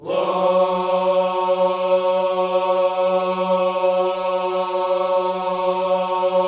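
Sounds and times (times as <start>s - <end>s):
gospel vocal singing whoa on F sharp 3: 0.0s - 6.4s.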